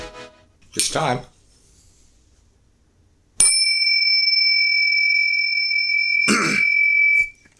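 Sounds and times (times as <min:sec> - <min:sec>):
speech: 0:01.0 - 0:01.4
bell ringing: 0:03.4 - 0:07.4
person clearing throat: 0:06.3 - 0:06.8.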